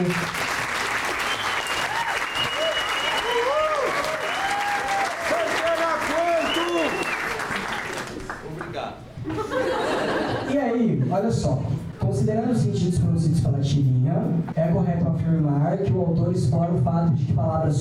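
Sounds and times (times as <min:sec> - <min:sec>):
speech: 0:00.0 - 0:00.4, 0:11.2 - 0:17.7
audience applause: 0:00.0 - 0:08.9
whoops and cheering voices: 0:01.4 - 0:07.2
laughter: 0:09.2 - 0:11.2.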